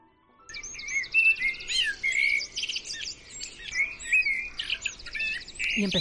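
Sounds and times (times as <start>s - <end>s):
birds chirping and trilling outside a window: 0.5s - 6.0s.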